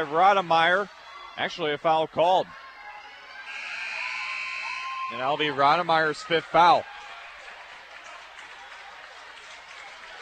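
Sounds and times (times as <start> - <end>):
speech: 0.0 - 2.6, 5.1 - 6.9
large crowd at a basketball game cheering: 0.0 - 10.2
large crowd at a basketball game applauding: 5.4 - 10.2.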